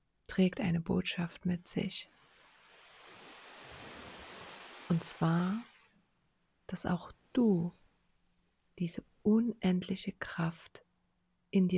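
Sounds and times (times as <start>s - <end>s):
speech: 0.4s - 2.2s, 4.9s - 5.7s, 6.7s - 7.8s, 8.8s - 10.8s, 11.5s - 11.7s
ocean waves breaking on shore: 2.1s - 6.0s.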